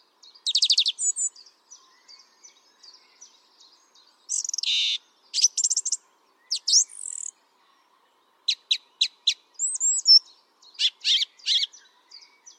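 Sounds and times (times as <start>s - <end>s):
song thrush singing loud varied phrases: 0.0s - 12.5s.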